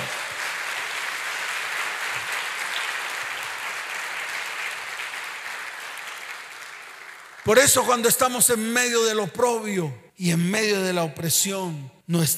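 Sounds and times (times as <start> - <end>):
audience applauding: 0.0 - 8.0
speech: 7.5 - 12.3.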